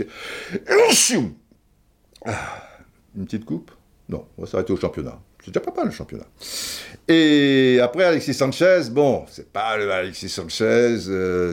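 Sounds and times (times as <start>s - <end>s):
speech: 0.0s - 1.4s, 2.2s - 11.5s
person sneezing: 0.4s - 1.4s
sharp breath in: 6.4s - 7.0s.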